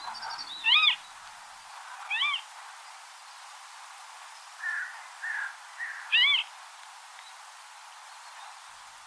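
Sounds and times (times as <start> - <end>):
reed-bed bird of prey calling: 0.0 - 1.0, 4.6 - 6.5
faint steady hiss: 0.0 - 9.0.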